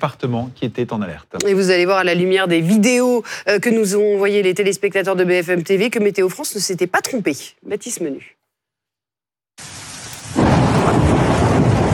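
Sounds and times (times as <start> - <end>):
speech: 0.0 - 8.4
hail pelting with hailstones several centimetres in diameter: 9.6 - 11.9
thunder rumbling in the Ardèche: 9.8 - 11.9.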